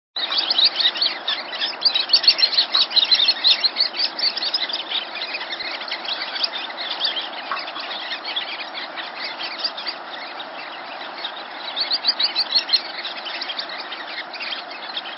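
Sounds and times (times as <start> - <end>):
sanderling calls: 0.2 - 15.1.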